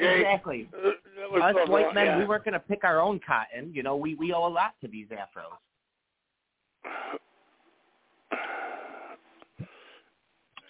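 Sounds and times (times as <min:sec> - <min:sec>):
speech: 0:00.3 - 0:05.7, 0:06.8 - 0:07.2
pastor sneezing: 0:06.8 - 0:07.3, 0:08.3 - 0:10.0
faint snuffle: 0:08.3 - 0:10.0.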